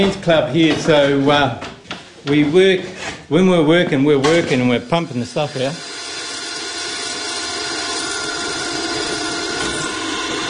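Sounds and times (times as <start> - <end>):
speech: 0.0 - 5.9
power drill drilling: 5.5 - 10.4.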